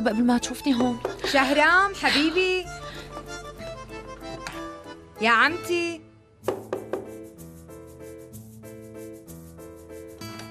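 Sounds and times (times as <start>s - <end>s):
speech: 0.0s - 3.0s, 5.2s - 6.6s
knocking on a door: 0.8s - 1.6s, 6.5s - 7.2s.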